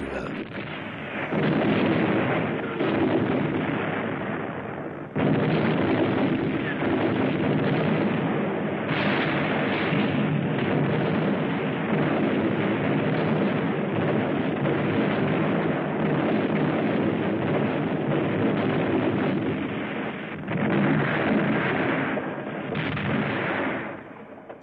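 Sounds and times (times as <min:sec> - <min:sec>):
heavy explosions from a long-range artillery bombardment of a city centre: 0:00.0 - 0:24.6.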